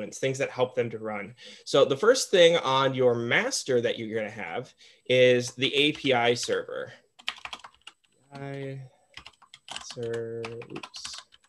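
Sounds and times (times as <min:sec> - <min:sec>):
speech: 0:00.0 - 0:07.0, 0:08.3 - 0:08.9, 0:10.0 - 0:11.1
typing on a computer keyboard: 0:07.2 - 0:11.4.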